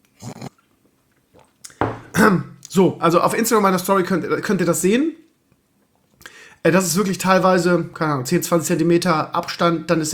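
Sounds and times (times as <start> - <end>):
person gulping and swallowing while drinking to clear the throat: 0.1 - 2.8
speech: 2.2 - 5.2, 6.6 - 10.1.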